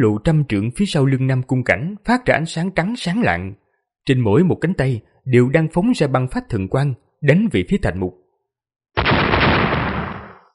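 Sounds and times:
speech: 0.0s - 8.2s
huge explosion: 9.0s - 10.5s.

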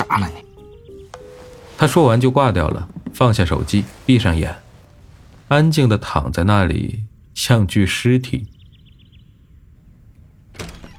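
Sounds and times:
speech: 0.1s - 0.4s, 1.8s - 4.6s, 5.5s - 8.5s
door being opened as someone comes in: 1.1s - 5.6s.

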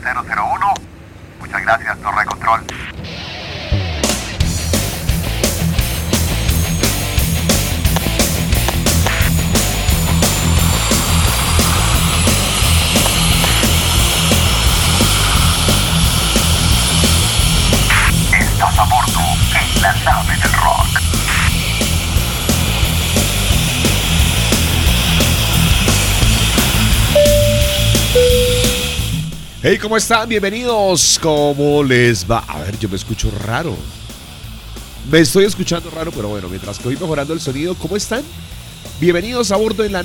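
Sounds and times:
speech: 0.0s - 3.3s, 19.0s - 21.0s, 29.6s - 34.0s, 35.1s - 40.0s
airplane taking off: 4.8s - 29.7s.

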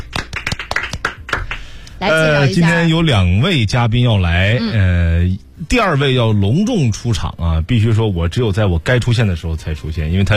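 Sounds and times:
audience applause in a radio studio: 0.0s - 1.6s
speech: 2.0s - 10.3s.

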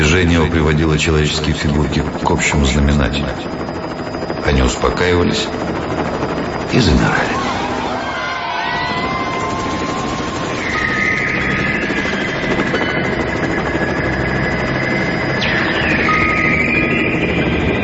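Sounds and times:
helicopter flying overhead: 0.0s - 17.8s
speech: 0.2s - 3.7s, 4.5s - 7.5s.

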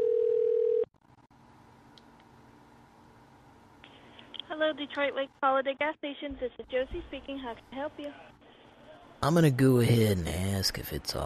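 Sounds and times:
telephone dial tone while a phone number is being called: 0.0s - 0.9s
speech: 4.6s - 8.3s, 9.2s - 11.2s.

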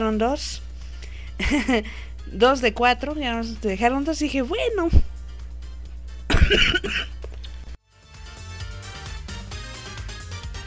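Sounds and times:
speech: 0.1s - 0.7s, 1.4s - 5.1s, 6.5s - 7.1s
person coughing in a short coughing fit: 6.3s - 7.2s.

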